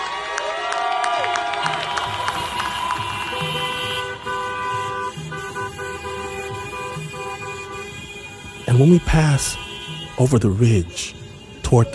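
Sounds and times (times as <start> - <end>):
crowd cheering: 0.0 - 4.8
car horns honking in a protest car procession: 1.6 - 11.9
speech: 8.8 - 9.6, 10.2 - 11.9.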